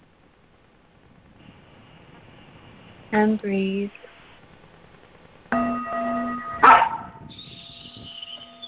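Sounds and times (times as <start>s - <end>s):
speech: 3.1s - 4.1s
struck metal bowl ringing: 5.6s - 7.8s
dog barking: 6.6s - 7.1s.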